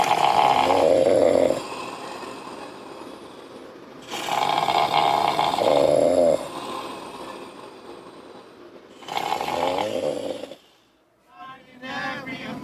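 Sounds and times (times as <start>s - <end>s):
loud snoring: 0.0s - 8.3s, 8.9s - 10.7s
quiet breathing: 1.0s - 4.4s, 6.3s - 9.1s, 9.9s - 11.1s.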